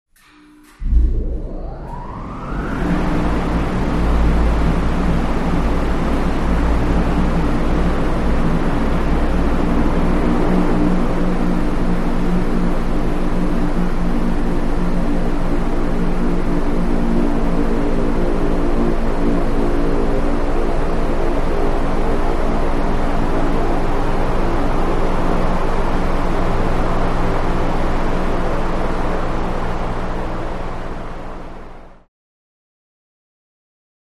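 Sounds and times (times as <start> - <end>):
large wind turbine powering up in a factory: 0.6 - 32.0.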